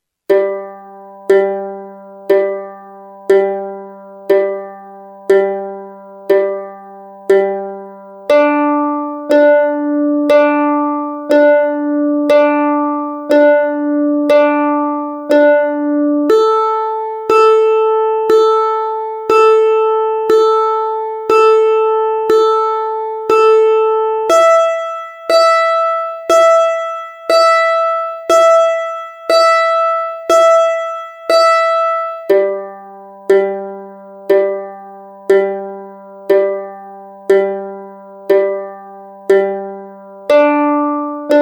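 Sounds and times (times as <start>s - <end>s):
mandolin strings G D A E: 0.3s - 41.3s.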